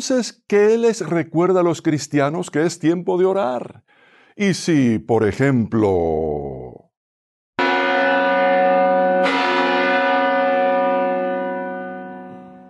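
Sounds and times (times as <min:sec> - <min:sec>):
speech: 0:00.0 - 0:06.8
large church bell tolling: 0:07.6 - 0:12.6.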